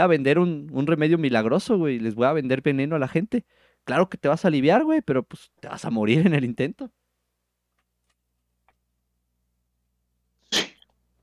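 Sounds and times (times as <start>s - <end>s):
speech: 0.0s - 7.0s
sneeze: 10.5s - 11.2s.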